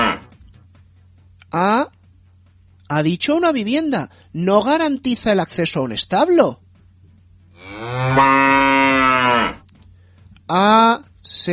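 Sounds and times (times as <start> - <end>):
cow mooing: 0.0 - 0.4, 7.6 - 9.6
speech: 1.5 - 2.0, 2.9 - 6.6, 10.5 - 11.5.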